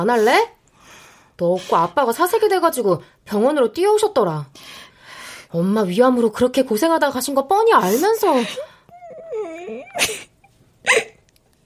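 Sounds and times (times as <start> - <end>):
speech: 0.0 - 0.6, 1.4 - 4.8, 5.5 - 8.7
woman crying: 8.1 - 11.2.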